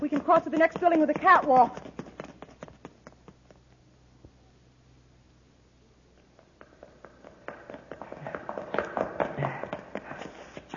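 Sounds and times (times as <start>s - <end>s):
hurried footsteps running up a flight of stairs inside a building: 0.0s - 3.4s, 6.4s - 10.7s
speech: 0.2s - 1.8s.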